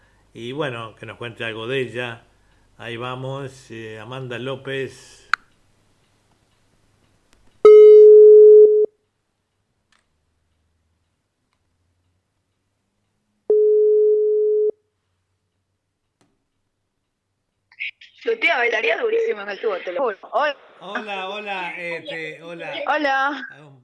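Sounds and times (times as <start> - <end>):
speech: 0.4 - 5.2, 18.4 - 23.8
telephone ringback tone while placing a phone call: 7.7 - 8.9, 13.5 - 14.8.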